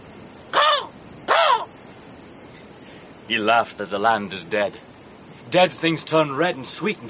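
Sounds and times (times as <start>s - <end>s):
faint high hiss: 0.0s - 7.0s
crow cawing: 0.5s - 1.8s
speech: 3.3s - 7.0s.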